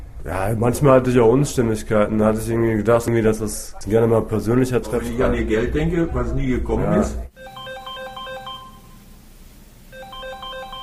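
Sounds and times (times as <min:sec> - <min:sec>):
speech: 0:00.2 - 0:07.3
office telephone ringing with electronic trilling: 0:07.3 - 0:09.1, 0:09.8 - 0:10.8.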